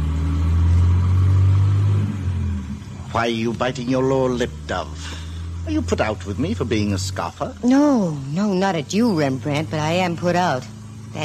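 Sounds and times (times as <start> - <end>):
car engine accelerating while driving off: 0.0 - 11.2
speech: 3.1 - 11.2.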